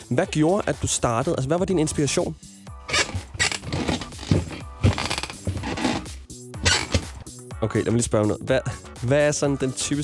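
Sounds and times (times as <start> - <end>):
speech: 0.1 - 2.5, 7.6 - 10.0
chair creaking: 2.9 - 7.2.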